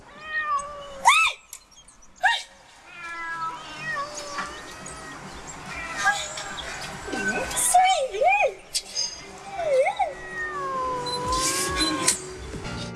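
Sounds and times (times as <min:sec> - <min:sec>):
several cats meowing: 0:00.0 - 0:01.1, 0:02.8 - 0:07.7, 0:09.4 - 0:12.4.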